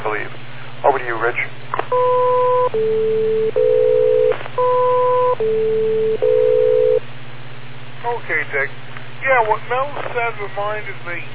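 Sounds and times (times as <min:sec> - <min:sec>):
constant low buzzing hum: 0:00.0 - 0:11.3
speech: 0:01.2 - 0:01.6, 0:10.3 - 0:11.3
steady electronic tones stepping in pitch: 0:01.9 - 0:07.0.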